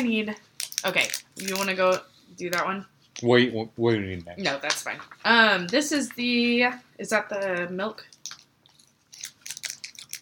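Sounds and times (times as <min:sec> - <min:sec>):
speech: 0:00.0 - 0:08.2
person chewing crunchy chocolate with puffed rice: 0:08.2 - 0:10.2.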